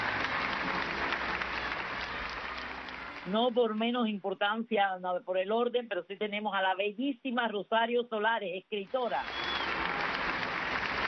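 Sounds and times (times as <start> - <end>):
applause from a small group for a guest: 0.0 - 4.0, 9.0 - 11.0
speech: 3.3 - 9.4.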